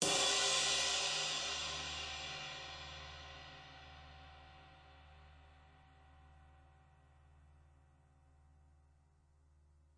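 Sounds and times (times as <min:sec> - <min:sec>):
hard hitting crash cymbal: 0:00.0 - 0:04.6.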